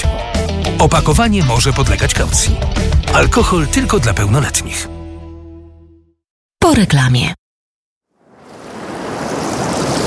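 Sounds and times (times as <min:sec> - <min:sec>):
speech: 0:00.8 - 0:05.0, 0:06.7 - 0:07.4
sea waves on the Polish seaside: 0:08.2 - 0:10.0.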